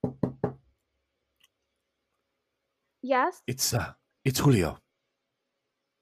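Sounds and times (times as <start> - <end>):
knocking on a door: 0.0 - 0.6
speech: 3.0 - 4.8.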